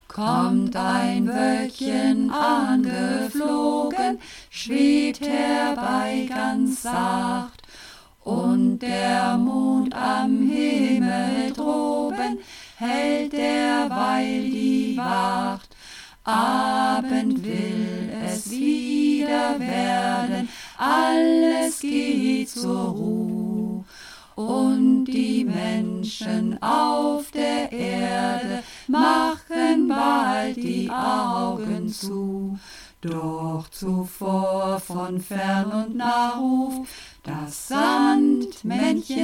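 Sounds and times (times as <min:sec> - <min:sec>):
song sung in several parts: 0:00.1 - 0:07.6, 0:08.2 - 0:39.2.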